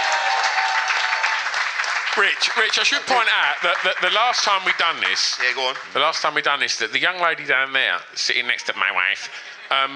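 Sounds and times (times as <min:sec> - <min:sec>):
crowd applauding with dense steady clapping: 0:00.0 - 0:06.4
speech: 0:02.2 - 0:09.9.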